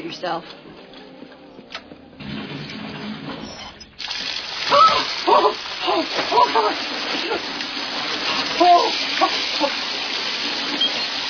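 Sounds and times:
speech: 0:00.0 - 0:00.9, 0:05.9 - 0:07.6, 0:08.6 - 0:09.8
shower water spraying: 0:04.0 - 0:11.2
person exclaiming and talking: 0:04.7 - 0:07.4, 0:08.6 - 0:09.7.

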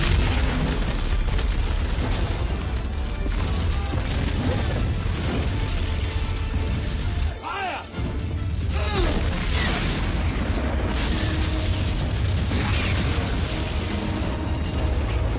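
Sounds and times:
weapon fire in a military shooter video game: 0:00.0 - 0:07.4, 0:08.0 - 0:15.0
artillery explosions in a military shooter video game: 0:00.0 - 0:15.2.

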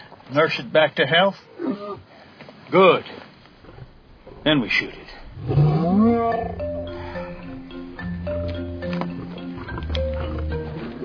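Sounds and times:
speech: 0:00.3 - 0:02.0, 0:02.7 - 0:03.3, 0:04.4 - 0:06.6
lion roaring: 0:04.1 - 0:07.7, 0:09.1 - 0:10.5.

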